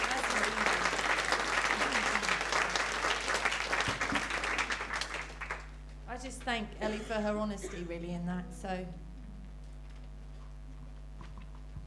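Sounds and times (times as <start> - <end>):
audience applause: 0.0 - 5.8
speech: 6.5 - 9.1.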